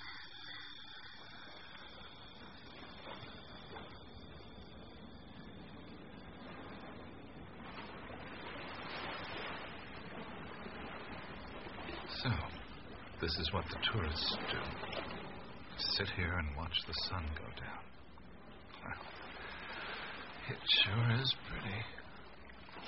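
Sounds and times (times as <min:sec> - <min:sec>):
faint whine: 0:00.0 - 0:22.8
ocean surf roaring: 0:00.0 - 0:22.8
speech: 0:12.2 - 0:12.6, 0:13.2 - 0:15.1, 0:15.9 - 0:18.0, 0:18.8 - 0:19.2, 0:20.5 - 0:22.0.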